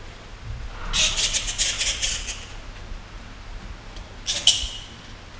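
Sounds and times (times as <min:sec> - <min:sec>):
Indian flying foxes calling in a zoo: 0:00.2 - 0:03.2, 0:04.2 - 0:05.3.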